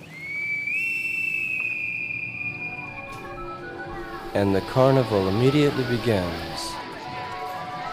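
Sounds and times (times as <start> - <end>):
shrill piercing whistle: 0.0 - 4.1
speech: 4.4 - 6.7.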